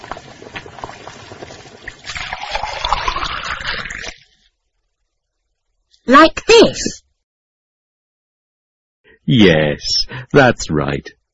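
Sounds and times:
boiling water poured onto instant noodles: 0.0s - 4.4s
speech: 6.1s - 7.0s, 9.3s - 11.2s.

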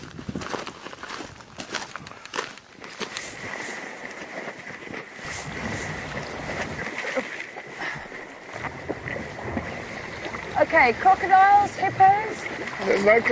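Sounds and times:
outdoor ambience: 0.0s - 13.3s
paddle strokes splashing as a boat is paddled across a river: 2.8s - 13.3s
steady wash of river water: 2.9s - 13.3s
speech: 10.7s - 13.3s.

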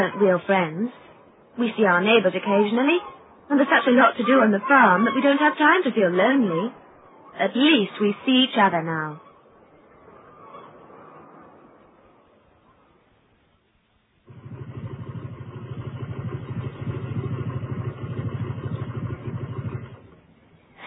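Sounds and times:
speech: 0.0s - 6.8s, 7.4s - 9.2s
faint noise: 0.0s - 20.8s
motorcycle engine running: 14.3s - 20.4s.

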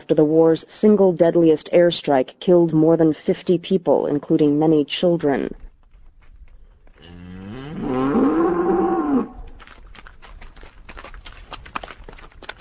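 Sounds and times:
speech: 0.1s - 5.6s, 7.8s - 8.2s
footsteps or hooves shuffling over loose debris: 5.3s - 12.5s
cow mooing among rubble of ruined buildings: 7.0s - 9.5s.

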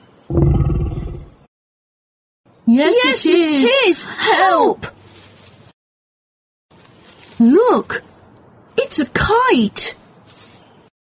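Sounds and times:
growling monster roar: 0.3s - 1.4s
speech: 2.7s - 5.0s, 7.4s - 8.1s, 8.9s - 10.0s.

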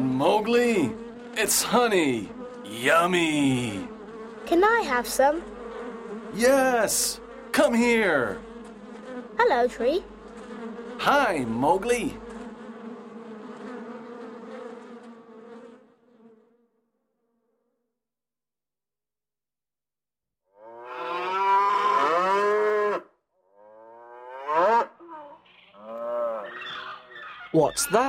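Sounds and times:
speech: 0.2s - 3.9s, 4.5s - 5.5s, 6.3s - 8.5s, 9.4s - 10.1s, 11.0s - 12.2s, 27.6s - 28.0s
cow mooing: 20.6s - 26.9s.

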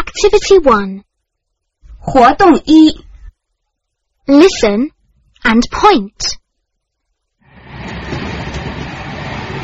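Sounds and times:
speech: 0.2s - 1.1s, 2.0s - 3.1s, 4.3s - 6.4s
train running: 7.4s - 9.6s.

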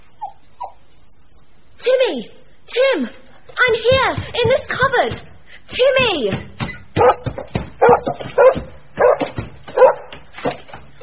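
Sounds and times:
speech: 1.9s - 8.7s
dog barking by a locked cupboard door inside a shop: 7.0s - 10.2s.

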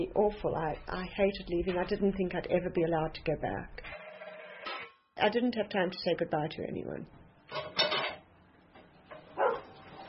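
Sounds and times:
speech: 0.0s - 4.0s, 5.2s - 7.7s
dog barking: 9.3s - 9.8s.

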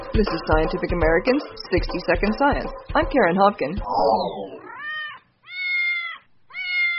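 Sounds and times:
speech: 0.2s - 4.6s
house cat meowing loudly: 4.4s - 6.9s.

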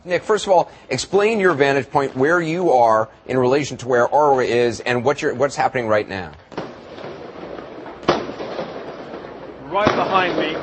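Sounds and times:
speech: 0.0s - 6.5s, 9.7s - 10.6s
crowd and street noise during a street confrontation: 0.0s - 10.6s
firework bursting during a street confrontation: 6.5s - 10.6s.

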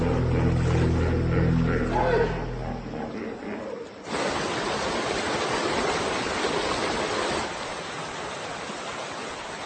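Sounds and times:
bull hippo territorial bellowing: 0.0s - 4.0s
rushing water of the Zambezi River: 3.8s - 9.6s.

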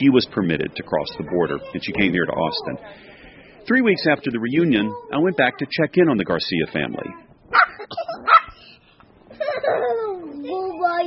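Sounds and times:
speech: 0.0s - 8.3s, 9.6s - 11.0s
puppy barking and yipping: 7.5s - 8.6s.

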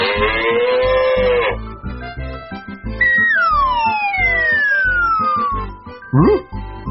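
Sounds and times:
cartoonish cow moo: 0.0s - 1.6s
bouncy rhythmic backing track: 1.9s - 6.8s
long sliding whistle-like tones: 3.0s - 6.5s.

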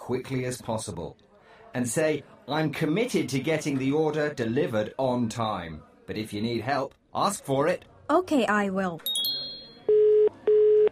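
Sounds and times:
speech: 0.1s - 9.3s
telephone ringing tone heard down the line: 9.7s - 10.8s.

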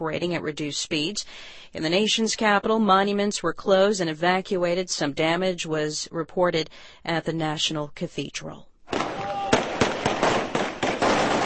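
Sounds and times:
speech: 0.0s - 8.7s
celebratory gunfire from rebels firing into the air in Libya: 8.9s - 11.4s.

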